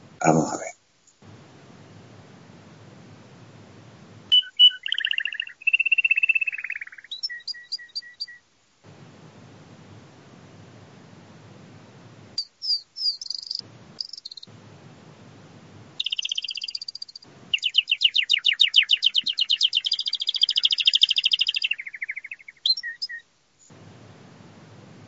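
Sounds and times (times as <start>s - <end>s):
low rumbling hiss: 0.0s - 7.4s, 8.4s - 25.0s
speech: 0.2s - 0.8s
domestic canary singing: 4.3s - 8.5s, 12.4s - 14.5s, 16.0s - 23.2s.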